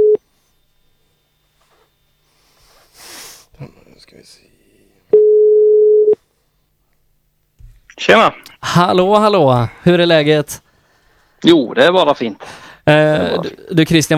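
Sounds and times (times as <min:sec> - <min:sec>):
telephone ringback tone on an outgoing call: 0:00.0 - 0:00.2, 0:05.1 - 0:06.2
soft sniffs and breaths: 0:02.3 - 0:03.6
speech: 0:08.1 - 0:10.6, 0:11.4 - 0:14.1.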